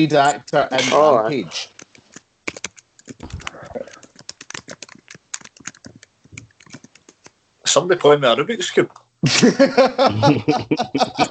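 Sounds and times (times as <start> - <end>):
speech: 0.0 - 1.7, 7.7 - 11.2
typing on a computer keyboard: 1.7 - 7.4
laughter: 9.2 - 11.2.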